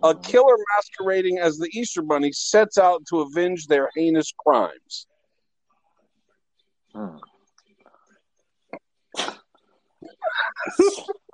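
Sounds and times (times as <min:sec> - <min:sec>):
speech: 0:00.0 - 0:05.1, 0:07.0 - 0:07.3, 0:10.2 - 0:11.2
single sneeze: 0:09.1 - 0:09.5, 0:10.7 - 0:11.2.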